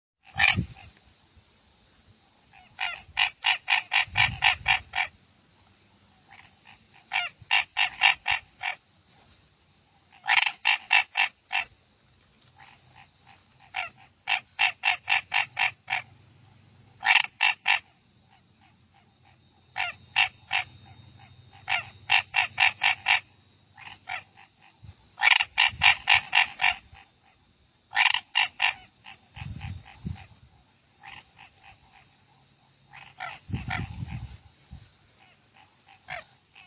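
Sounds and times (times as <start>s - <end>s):
Boana raniceps calling: 0.2s - 1.2s, 2.2s - 36.6s.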